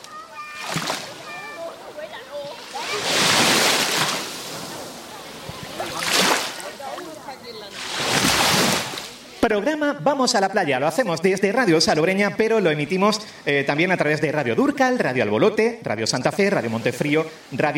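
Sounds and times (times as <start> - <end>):
Mediterranean sea waves washing onto the shore: 0.0 - 9.4, 16.4 - 17.7
faint voices: 0.0 - 9.8
speech: 9.5 - 17.7.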